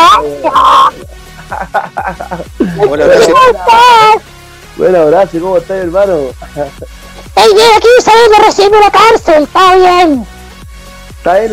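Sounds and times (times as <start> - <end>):
person imitating a parrot squawk: 0.0 - 1.2, 3.0 - 4.2
laughter: 0.0 - 3.9, 6.4 - 7.0
speech: 4.8 - 10.3, 11.2 - 11.5.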